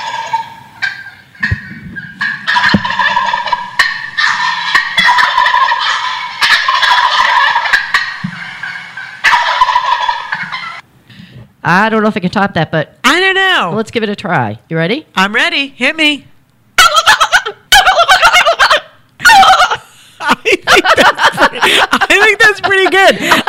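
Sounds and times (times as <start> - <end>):
wild turkey gobbling: 0.0 - 10.8, 16.8 - 23.4
laughter: 10.8 - 11.4, 20.1 - 22.4
speech: 11.7 - 13.0, 13.6 - 16.3, 22.6 - 23.4.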